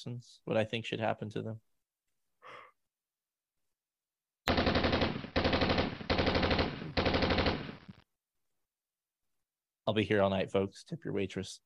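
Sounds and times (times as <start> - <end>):
speech: 0.0 - 1.7, 9.9 - 11.6
short breathy exhale: 2.4 - 2.8
loud rapid bursts of automatic gunfire: 4.5 - 7.9.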